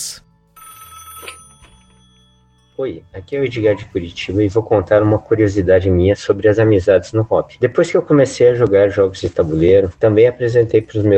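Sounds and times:
telephone ringing with electronic tone: 0.0s - 4.2s
speech: 2.8s - 11.1s.

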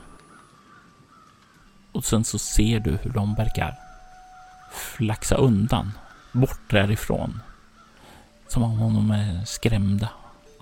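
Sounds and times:
faint crows cawing: 0.2s - 1.9s, 3.8s - 8.4s
speech: 2.0s - 3.8s, 4.7s - 7.5s, 8.5s - 10.6s.

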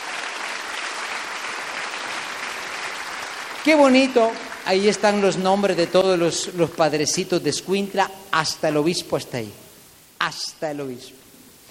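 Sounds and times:
crowd clapping for a priest: 0.0s - 5.2s
speech: 3.6s - 9.6s, 10.3s - 11.2s.

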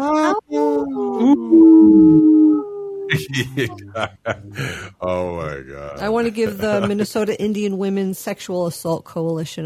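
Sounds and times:
person imitating a wolf howl: 0.0s - 4.7s
laughter: 3.1s - 5.0s, 6.0s - 7.4s
short vocal bursts: 3.1s - 5.1s
speech: 3.2s - 9.6s.

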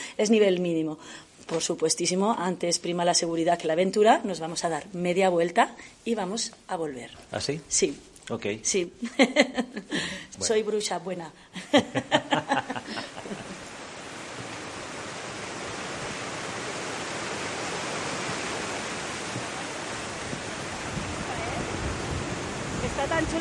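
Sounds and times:
speech: 0.2s - 13.4s
laughter: 11.6s - 13.6s
water gushing from a cave spring: 12.4s - 23.3s.

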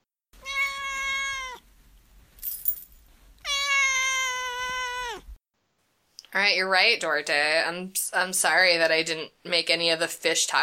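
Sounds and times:
male pet cat meowing: 0.4s - 1.6s, 3.4s - 5.4s
speech: 6.4s - 10.6s.

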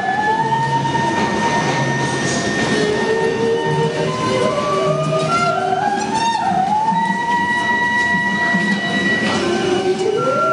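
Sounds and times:
musical saw playing a slow wavering melody: 0.0s - 10.5s
steady rumble of subway or train noise: 0.0s - 10.5s.

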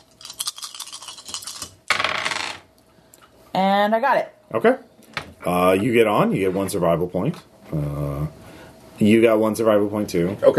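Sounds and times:
dice being shaken and rolled: 0.2s - 2.6s
speech: 3.6s - 8.4s, 9.0s - 10.5s.

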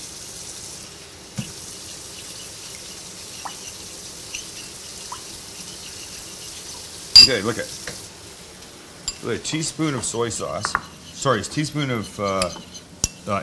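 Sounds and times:
hot water running from a tap: 0.0s - 10.8s
small clinks and taps against the sink: 7.2s - 7.4s
speech: 7.2s - 7.9s, 9.2s - 13.4s.

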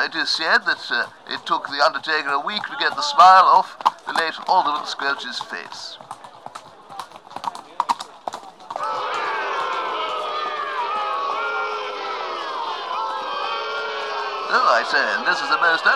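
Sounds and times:
speech: 0.0s - 6.2s, 14.5s - 15.9s
armed troops' horses galloping: 0.0s - 15.9s
loud sustained roar of many crowd voices: 8.8s - 15.9s.

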